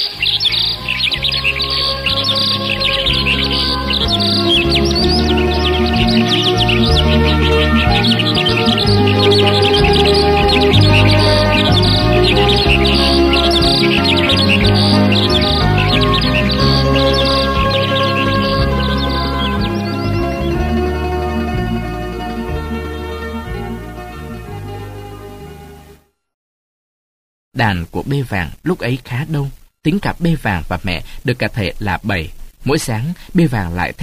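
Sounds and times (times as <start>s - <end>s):
many birds chirping and singing in a chorus: 0.0s - 25.8s
steady low musical backing: 0.0s - 26.1s
speech: 27.6s - 34.0s.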